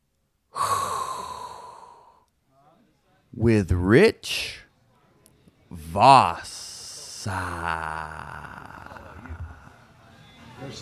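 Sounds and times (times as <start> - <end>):
long deep inhaled breath: 0.6 - 2.2
speech: 3.4 - 4.6, 5.7 - 6.6, 7.2 - 8.6, 10.6 - 10.7.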